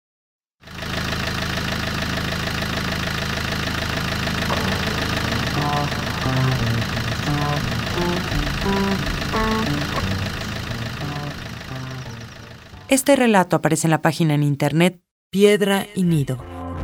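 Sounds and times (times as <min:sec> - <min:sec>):
car engine idling with handbrake on: 0:00.6 - 0:13.6
speech: 0:12.9 - 0:16.5.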